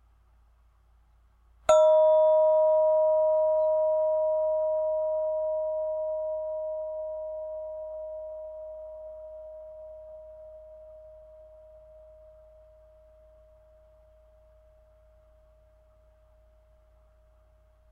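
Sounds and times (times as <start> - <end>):
single bell struck: 1.7 - 7.6.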